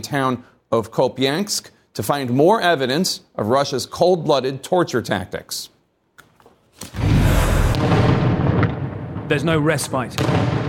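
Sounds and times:
speech: 0.0s - 5.8s, 9.3s - 10.6s
artillery fire booming in a battle in Kupiansk in eastern Ukraine: 6.9s - 10.6s.

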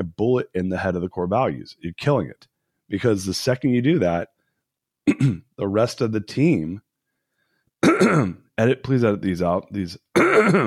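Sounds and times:
speech: 0.0s - 4.4s, 5.0s - 6.8s, 7.8s - 10.6s
man clearing throat partway through speaking: 5.1s - 5.5s, 7.8s - 8.5s, 10.1s - 10.6s.

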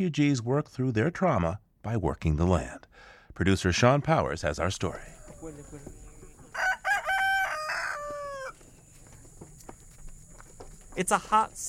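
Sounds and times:
speech: 0.0s - 6.0s, 11.0s - 11.6s
small farmyard noises: 3.8s - 11.6s
chickens clucking: 4.9s - 11.0s
rooster crowing: 6.4s - 8.8s.

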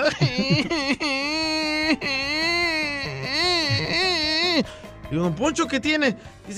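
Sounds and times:
laughter: 0.0s - 4.6s
man wailing and sobbing loudly: 0.0s - 4.7s
speech: 5.1s - 6.5s.

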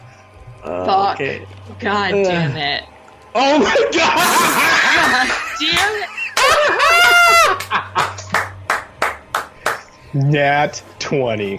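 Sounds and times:
speech: 0.6s - 6.8s, 10.1s - 11.5s
laughter: 4.0s - 8.5s
loud excited vocal whoop: 6.8s - 7.6s
hands clapping: 7.6s - 9.9s.

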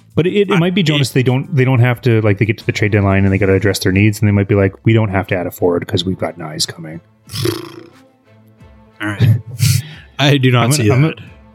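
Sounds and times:
speech: 0.2s - 7.9s, 9.0s - 11.5s
person imitating a fart with the mouth: 7.3s - 8.0s.

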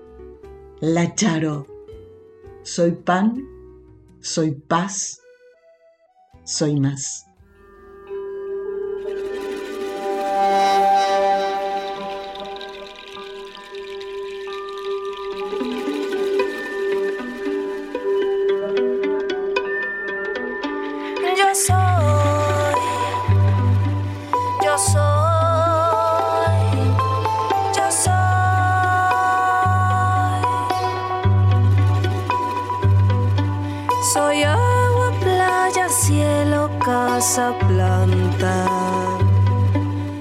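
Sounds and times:
speech: 0.8s - 1.7s, 2.6s - 3.5s, 4.2s - 5.2s, 6.4s - 7.3s
soft sustained melodic tones of an instrumental song intro: 7.5s - 40.1s.

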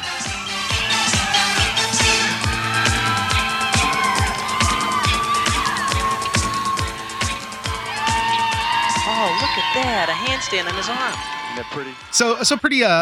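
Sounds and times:
upbeat 1980s dance music with punchy kick-drum beat for a cheerleading routine: 0.0s - 12.2s
excited crowd cheering and shouting: 0.0s - 13.0s
speech: 9.8s - 13.0s.

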